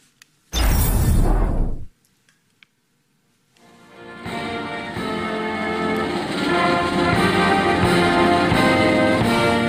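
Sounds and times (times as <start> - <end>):
short burst of noise: 0.5 - 1.9
castle brass band playing a birthday song: 3.7 - 9.6.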